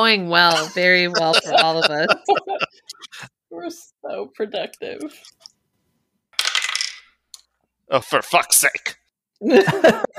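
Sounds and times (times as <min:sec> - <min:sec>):
speech: 0:00.0 - 0:05.5, 0:07.9 - 0:10.1
laughter: 0:00.5 - 0:03.2, 0:09.4 - 0:10.1
dice rolled across a hard tabletop: 0:06.4 - 0:07.1.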